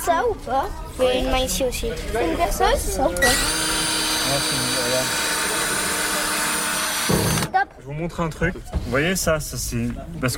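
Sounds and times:
speech: 0:00.1 - 0:03.7, 0:04.3 - 0:05.3, 0:07.8 - 0:10.3
cordless drill-driver whirring: 0:03.2 - 0:07.6.

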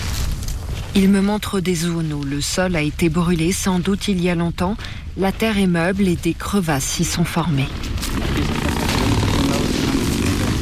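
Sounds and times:
speech: 0:01.0 - 0:08.8
motorcycle engine droning: 0:08.2 - 0:10.6.

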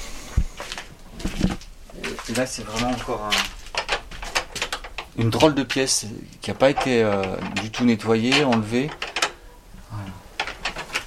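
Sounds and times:
old door opening: 0:01.4 - 0:11.0
worn old lock rattling with sharp metallic clicks and scrapes: 0:02.2 - 0:09.5, 0:10.4 - 0:11.0
speech: 0:02.3 - 0:03.6, 0:05.2 - 0:09.0.

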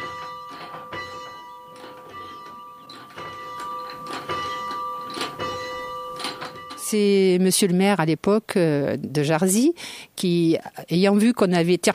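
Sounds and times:
chapel bell ringing: 0:00.0 - 0:07.0
speech: 0:06.9 - 0:11.9.

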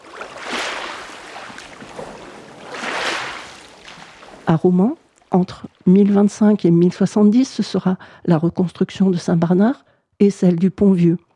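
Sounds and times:
water surges past a boat carrying quarried stone blocks: 0:00.0 - 0:06.7
speech: 0:04.5 - 0:11.3.

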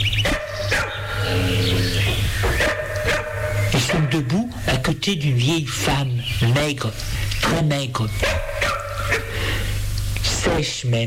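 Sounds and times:
two large dogs barking deeply: 0:00.0 - 0:04.4, 0:08.2 - 0:09.6
steady low hum: 0:00.0 - 0:11.0
speech: 0:05.0 - 0:08.5, 0:10.4 - 0:11.0.

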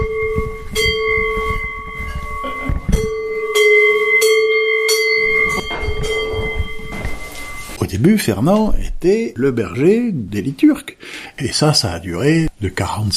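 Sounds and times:
large bells pealing: 0:00.0 - 0:07.9
speech: 0:08.2 - 0:13.1.

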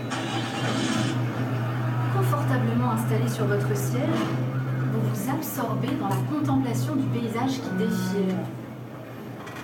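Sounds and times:
bus engine starting up and idling: 0:00.1 - 0:09.4
speech: 0:03.1 - 0:04.4, 0:05.0 - 0:08.6.

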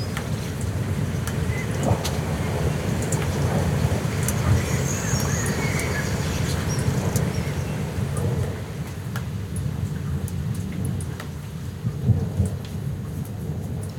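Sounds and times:
thunderstorm thunder rumbling: 0:00.0 - 0:08.8
steady hissing rain: 0:00.0 - 0:13.9
faint brief bird chirps: 0:04.4 - 0:07.8.

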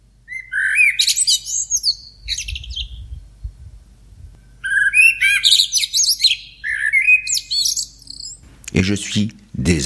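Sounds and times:
blackbirds singing at dawn in a city: 0:00.2 - 0:08.4
faint low rumble: 0:02.2 - 0:04.5
speech: 0:08.8 - 0:09.8.

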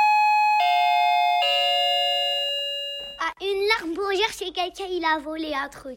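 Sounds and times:
doorbell chime ringing descending notes: 0:00.0 - 0:03.4
speech: 0:03.8 - 0:05.9.

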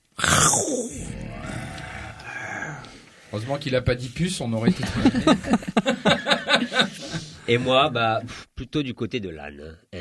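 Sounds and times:
human voice imitating a lion's roar: 0:00.2 - 0:02.9
speech: 0:03.3 - 0:06.9, 0:07.5 - 0:09.9
laughter: 0:04.6 - 0:07.9.

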